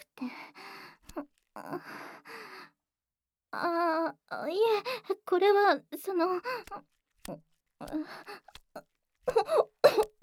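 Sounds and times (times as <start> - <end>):
speech: 3.6 - 8.5
person choking and spluttering: 9.4 - 10.2.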